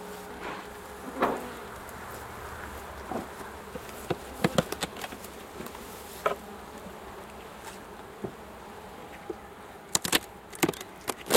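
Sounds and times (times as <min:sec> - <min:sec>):
honeybees buzzing around a smoked beehive being opened: 0:00.0 - 0:11.3
wooden cracks and knocks as a beehive is opened: 0:04.0 - 0:05.2, 0:09.9 - 0:11.3.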